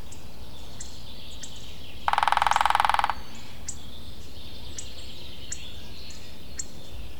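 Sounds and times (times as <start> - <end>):
Lesser spotted woodpecker drumming: 2.1 - 3.4.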